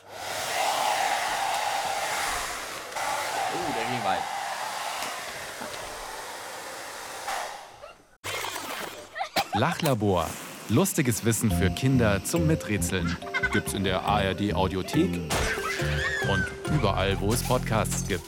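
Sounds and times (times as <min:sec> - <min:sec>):
hair dryer blowing paper planes: 0:00.0 - 0:07.8
speech: 0:04.0 - 0:04.4, 0:09.6 - 0:18.2.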